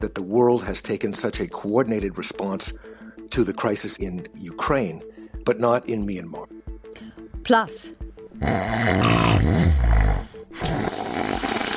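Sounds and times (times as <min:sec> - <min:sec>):
speech: 0:00.0 - 0:06.6, 0:07.4 - 0:10.9
snoring: 0:08.4 - 0:11.7.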